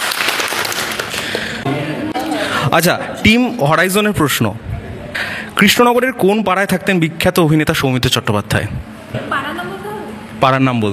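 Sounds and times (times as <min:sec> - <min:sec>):
audience applause at a team quiz contest: 0:00.0 - 0:01.6
speech: 0:01.6 - 0:04.7, 0:05.6 - 0:09.4, 0:10.4 - 0:10.9.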